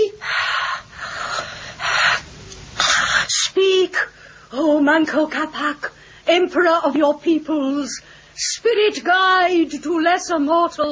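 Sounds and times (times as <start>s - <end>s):
woman breathing heavily with rasping breaths: 0.2s - 3.3s
speech: 4.5s - 10.8s.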